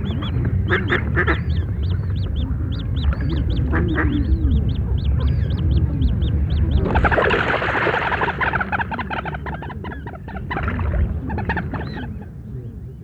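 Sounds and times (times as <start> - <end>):
coot calling: 0.1 - 13.0
busy water sounds: 2.1 - 12.3
splashing and flapping as a mallard duck is chased off: 4.6 - 12.1.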